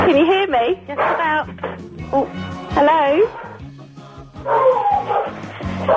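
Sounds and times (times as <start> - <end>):
speech: 0.1 - 3.5, 4.4 - 5.9
dog barking and yipping excitedly: 0.9 - 1.3, 4.4 - 5.9.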